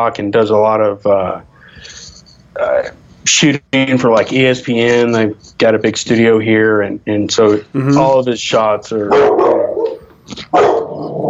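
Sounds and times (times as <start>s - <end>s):
speech: 0.0s - 2.0s, 2.6s - 9.6s, 10.3s - 11.2s
chocolate Labrador barking: 9.1s - 11.1s.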